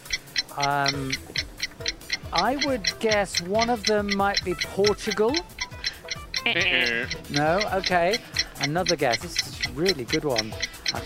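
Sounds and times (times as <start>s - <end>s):
quiz countdown clock ticking: 0.0s - 11.0s
speech: 0.6s - 5.5s, 6.4s - 11.0s
person making voiced sound: 6.5s - 7.1s.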